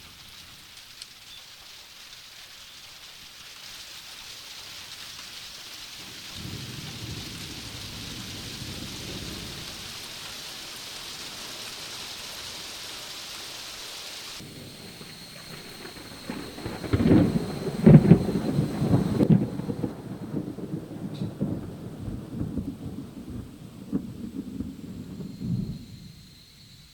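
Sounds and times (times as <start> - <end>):
steady heavy summer evening rain hissing: 0.0 - 26.9
low thunder rumbling: 5.9 - 12.8, 14.4 - 26.8.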